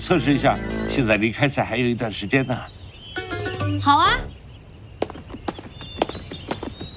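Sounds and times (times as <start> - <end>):
speech: 0.0 - 2.8, 3.8 - 4.4
hoofbeats of a running calf: 5.0 - 6.9.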